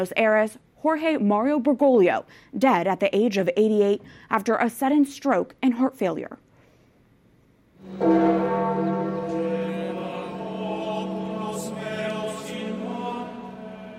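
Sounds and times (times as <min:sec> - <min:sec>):
speech: 0:00.0 - 0:06.4, 0:07.8 - 0:08.9
church bells tolling slowly at St. Peter's Basilica: 0:07.8 - 0:13.9
faint higher chimes: 0:07.8 - 0:13.9.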